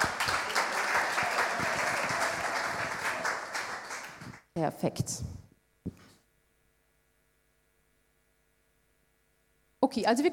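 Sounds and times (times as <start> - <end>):
crowd clapping: 0.0 - 4.5
speech: 4.6 - 5.4, 9.9 - 10.3.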